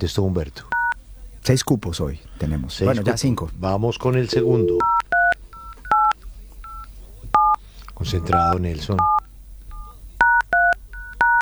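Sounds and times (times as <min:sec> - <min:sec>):
speech: 0:00.0 - 0:00.8, 0:01.4 - 0:05.0, 0:08.0 - 0:09.2
telephone keypad DTMF tones as a number is dialed: 0:00.7 - 0:01.0, 0:04.3 - 0:07.6, 0:08.2 - 0:09.2, 0:09.8 - 0:11.4.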